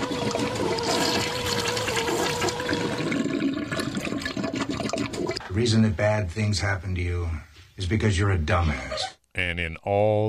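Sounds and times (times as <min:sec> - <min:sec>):
toilet flushing: 0:00.0 - 0:05.6
speech: 0:05.6 - 0:10.2.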